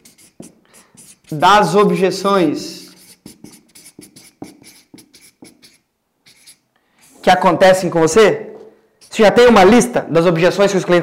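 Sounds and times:
pen scribbling on a sheet of paper: 0:00.0 - 0:02.2, 0:02.8 - 0:07.2
speech: 0:01.3 - 0:02.8, 0:07.3 - 0:08.5, 0:09.2 - 0:11.0.

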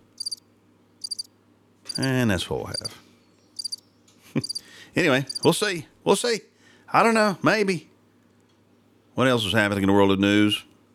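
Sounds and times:
crickets chirping: 0:00.0 - 0:00.4, 0:01.0 - 0:01.3, 0:01.9 - 0:02.9, 0:03.6 - 0:03.8, 0:04.4 - 0:05.5
low steady hum: 0:00.0 - 0:10.9
speech: 0:02.0 - 0:03.0, 0:04.4 - 0:07.9, 0:09.2 - 0:10.7.

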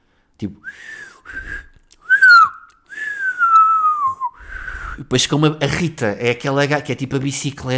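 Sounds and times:
speech: 0:00.4 - 0:01.6, 0:05.0 - 0:07.7
person whistling: 0:00.6 - 0:05.0.

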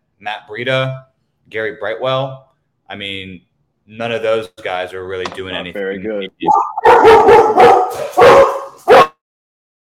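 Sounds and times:
speech: 0:00.2 - 0:09.1
dog barking at someone outside door: 0:06.5 - 0:09.2.

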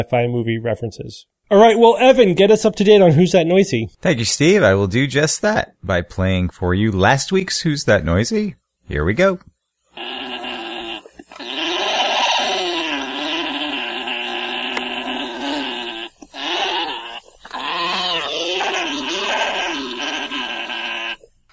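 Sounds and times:
speech: 0:00.0 - 0:10.4
male alpaca warbling gurgling calls while mating: 0:10.0 - 0:21.2.

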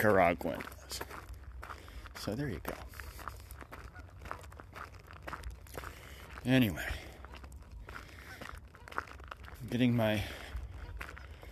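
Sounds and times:
speech: 0:00.0 - 0:01.2, 0:02.3 - 0:02.9, 0:06.4 - 0:07.0, 0:09.6 - 0:10.4
soft footsteps crunching on a walk past a pond: 0:00.0 - 0:11.5.

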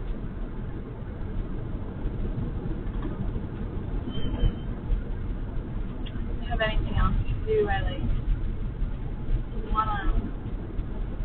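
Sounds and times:
road and engine noise inside a moving car: 0:00.0 - 0:11.2
faint squeak: 0:04.0 - 0:04.8.

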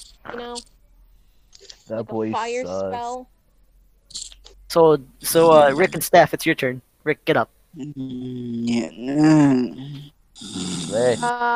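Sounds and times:
speech: 0:00.2 - 0:00.8, 0:01.9 - 0:03.3, 0:04.7 - 0:11.5
person imitating snoring: 0:05.4 - 0:06.1, 0:07.8 - 0:11.5.

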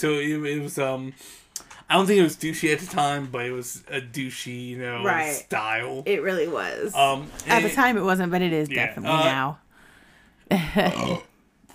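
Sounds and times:
speech: 0:00.0 - 0:09.6, 0:10.5 - 0:11.3
loud low throaty burp: 0:10.7 - 0:11.4.

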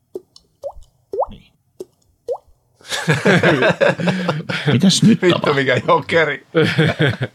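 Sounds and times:
water drops from a leaking roof plopping into a container: 0:00.2 - 0:01.4, 0:02.3 - 0:02.5
laughter: 0:02.8 - 0:07.3
speech: 0:03.1 - 0:07.3.

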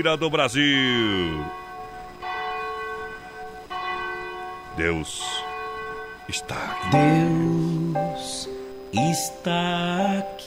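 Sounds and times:
speech: 0:00.0 - 0:01.6, 0:04.8 - 0:05.4, 0:06.3 - 0:10.4
large cathedral bell ringing: 0:00.0 - 0:08.8.

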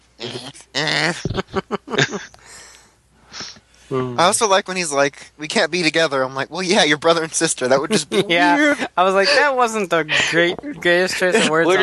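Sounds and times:
speech: 0:00.2 - 0:01.7, 0:03.9 - 0:11.8
laughter: 0:01.0 - 0:02.3, 0:07.6 - 0:11.8
person vocally imitating an upset chihuahua growl: 0:03.9 - 0:04.2.

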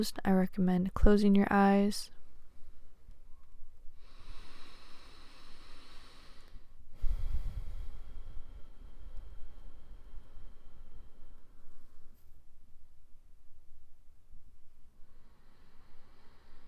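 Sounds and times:
speech: 0:00.0 - 0:02.2
deep breathing during a seated relaxation exercise: 0:03.9 - 0:12.2, 0:15.0 - 0:16.6.

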